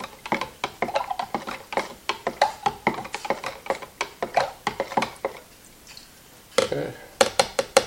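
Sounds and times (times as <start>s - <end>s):
paddle stirring liquid photo developer concentrate, knocking against the container: 0.0s - 5.4s, 6.6s - 7.8s.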